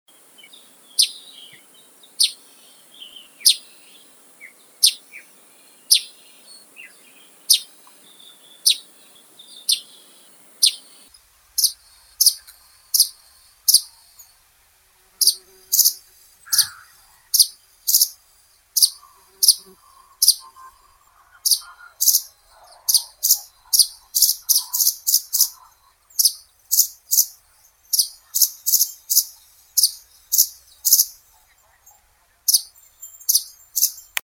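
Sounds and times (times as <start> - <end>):
russet sparrow Passer rutilans chirping: 0.1 - 14.4, 15.1 - 34.2.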